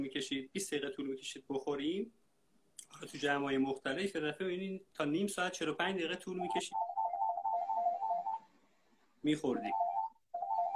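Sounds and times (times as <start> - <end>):
speech: 0.0 - 2.2, 2.8 - 6.9, 9.2 - 9.8
phone ringtone trilling in a warbling electronic pattern: 6.4 - 8.5, 9.5 - 10.7.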